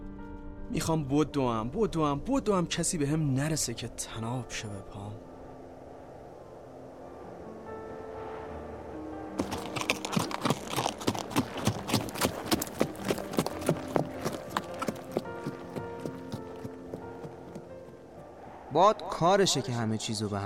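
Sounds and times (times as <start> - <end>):
speech: 0.7 - 5.3, 18.8 - 20.4
horse hooves clip-clopping: 9.4 - 18.2.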